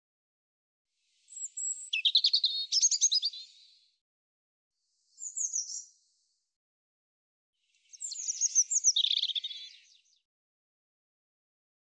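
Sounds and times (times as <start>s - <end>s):
European robin singing: 1.2s - 3.8s, 7.8s - 10.2s.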